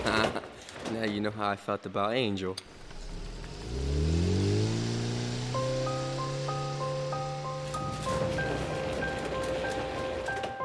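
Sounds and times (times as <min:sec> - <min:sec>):
speech: 0:01.0 - 0:02.8
small car engine revving and accelerating away: 0:02.8 - 0:10.2.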